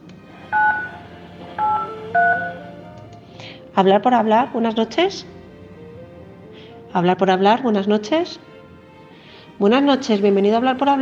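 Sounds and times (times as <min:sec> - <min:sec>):
telephone keypad tones dialing a number: 0:00.5 - 0:01.0, 0:01.6 - 0:02.6
speech: 0:03.8 - 0:05.3, 0:06.9 - 0:08.5, 0:09.6 - 0:11.0.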